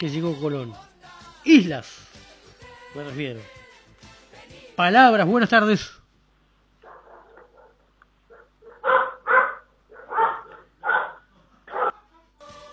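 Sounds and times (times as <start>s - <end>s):
speech: 0.0s - 2.2s, 2.9s - 3.6s, 4.8s - 6.0s
dogs barking and yipping: 6.8s - 12.0s.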